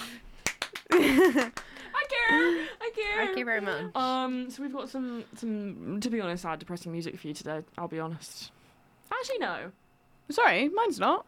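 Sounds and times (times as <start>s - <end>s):
hand claps: 0.3s - 2.2s
laughter: 0.8s - 2.8s
speech: 0.9s - 1.6s, 2.3s - 11.2s.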